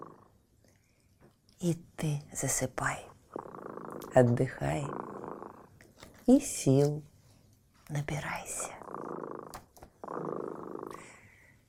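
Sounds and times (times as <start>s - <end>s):
cat purring: 0.0s - 0.4s, 2.2s - 7.1s, 8.1s - 11.5s
speech: 1.6s - 3.1s, 4.2s - 5.0s, 6.3s - 7.1s, 7.9s - 8.8s.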